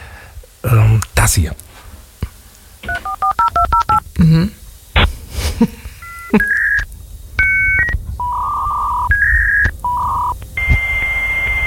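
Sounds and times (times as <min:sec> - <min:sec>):
speech: 0:00.6 - 0:01.6, 0:04.2 - 0:04.6, 0:05.6 - 0:06.5
33.6k dial-up modem handshake tones, chirps and warbles: 0:02.8 - 0:04.0, 0:06.0 - 0:11.6
33.6k dial-up modem dialing touch-tone beeps: 0:02.9 - 0:04.0, 0:06.0 - 0:06.8, 0:07.4 - 0:11.6.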